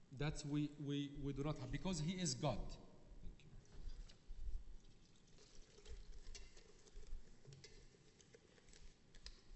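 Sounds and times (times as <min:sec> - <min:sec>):
speech: 0:00.2 - 0:02.9
water pouring into a container: 0:03.6 - 0:08.9.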